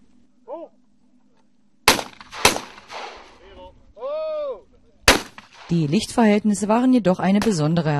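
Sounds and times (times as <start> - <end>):
gunshots at a floodlit clay pigeon range: 1.9 - 3.4, 5.1 - 6.0
speech: 5.7 - 7.9.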